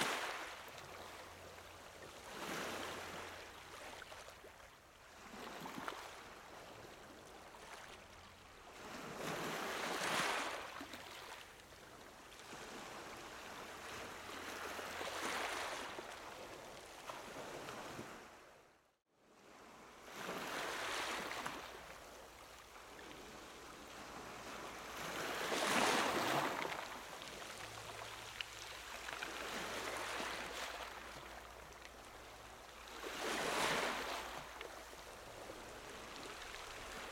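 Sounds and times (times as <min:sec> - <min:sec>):
ocean waves washing in and out: 0:00.0 - 0:37.0.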